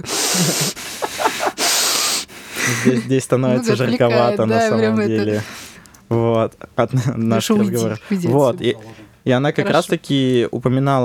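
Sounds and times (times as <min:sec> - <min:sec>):
speech: 0:00.0 - 0:01.4, 0:02.7 - 0:11.0
heavy breathing into the microphone: 0:00.0 - 0:03.0, 0:05.4 - 0:06.1
laughter: 0:00.1 - 0:05.5.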